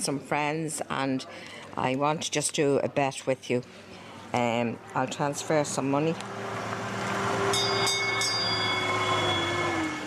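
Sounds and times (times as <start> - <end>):
speech: 0.0 - 6.6
small tourist train engine drone: 4.3 - 10.0
faint tourist train wheel squeal: 7.3 - 10.0
bright bell-like tones: 7.4 - 10.0.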